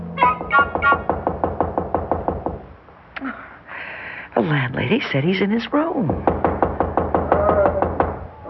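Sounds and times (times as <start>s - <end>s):
knocking on a room door in a hallway: 0.4s - 2.7s, 6.1s - 8.3s
speech: 4.9s - 6.4s.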